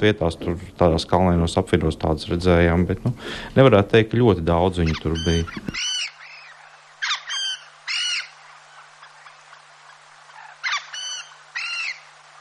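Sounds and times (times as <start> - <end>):
speech: 0.0 - 6.0
faint hum: 0.0 - 12.3
willow ptarmigan croaking calls: 4.5 - 12.3.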